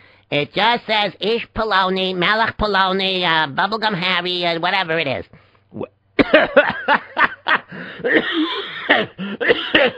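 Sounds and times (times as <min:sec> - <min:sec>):
speech: 0:00.3 - 0:07.2, 0:07.8 - 0:09.9
person coughing and laughing: 0:06.2 - 0:09.9.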